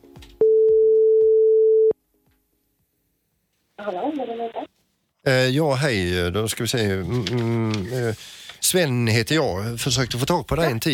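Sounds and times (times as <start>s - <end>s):
telephone ringback tone while someone is being called: 0.4s - 2.0s
speech: 3.9s - 10.9s.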